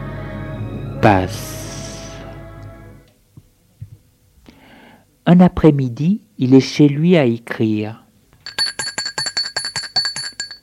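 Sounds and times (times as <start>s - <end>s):
speech: 1.0s - 1.6s, 5.3s - 8.0s
doorbell ringing with metallic strikes: 8.5s - 10.6s.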